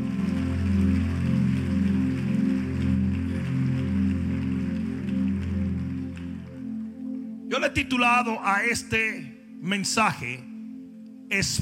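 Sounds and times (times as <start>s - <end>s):
large crowd applauding: 0.0s - 7.4s
sustained keyboard chords: 0.0s - 11.6s
speech: 7.5s - 10.5s, 11.3s - 11.6s.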